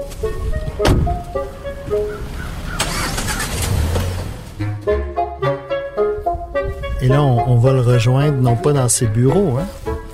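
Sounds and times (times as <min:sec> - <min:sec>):
car engine rumble on Sherbrooke Street in Montreal: 0:00.0 - 0:05.0
hum of surrounding traffic: 0:00.0 - 0:06.9
road noise: 0:00.0 - 0:10.1
sharp thump: 0:00.8 - 0:01.2
speech: 0:00.8 - 0:02.3, 0:07.1 - 0:09.8.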